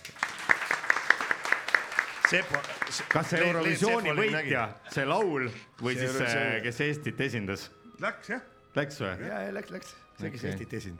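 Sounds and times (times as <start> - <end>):
one or a few people clapping: 0.0 - 4.3
speech: 2.3 - 10.9.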